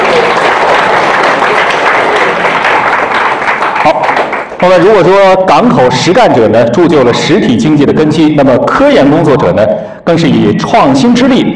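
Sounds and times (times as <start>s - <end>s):
large audience applauding: 0.0s - 5.0s
speech: 4.6s - 11.5s.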